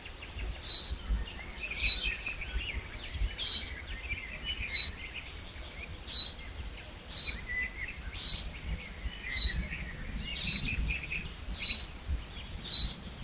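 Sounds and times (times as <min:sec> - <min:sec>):
soft twittering: 0:00.0 - 0:13.2.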